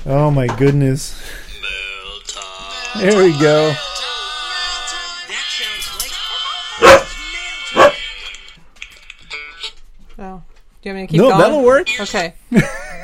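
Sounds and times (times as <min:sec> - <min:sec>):
speech: 0:00.0 - 0:01.4, 0:02.9 - 0:04.0, 0:10.8 - 0:12.8
dog barking, startled by egg cartons: 0:06.8 - 0:07.1, 0:07.8 - 0:08.0.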